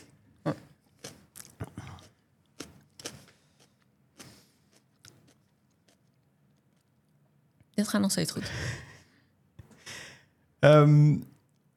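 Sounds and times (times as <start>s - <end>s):
person biting and chewing a pepper: 0.0s - 7.2s
speech: 0.4s - 0.6s, 7.8s - 8.9s, 10.6s - 11.3s.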